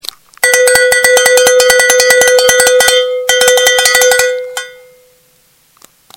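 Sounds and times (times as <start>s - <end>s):
bull bell ringing: 0.4s - 5.3s.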